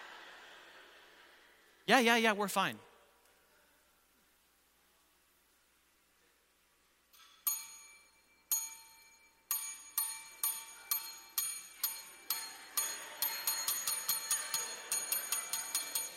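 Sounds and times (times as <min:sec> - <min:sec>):
speech: 0:01.9 - 0:02.9
bell ringing: 0:07.5 - 0:16.1.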